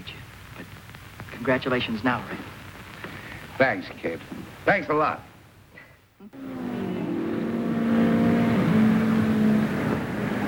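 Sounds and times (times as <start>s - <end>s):
speech: 1.4s - 2.5s, 3.6s - 5.3s
race car engines droning during qualifying time trials at a speedway: 6.3s - 10.4s.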